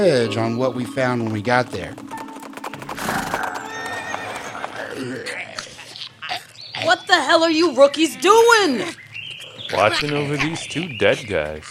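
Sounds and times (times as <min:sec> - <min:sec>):
speech: 0:00.0 - 0:02.2, 0:05.0 - 0:05.4, 0:06.8 - 0:09.0, 0:09.6 - 0:11.6
horse hooves clip-clopping: 0:00.0 - 0:05.9
ridden horse whinnying on an outback excursion: 0:03.0 - 0:06.4.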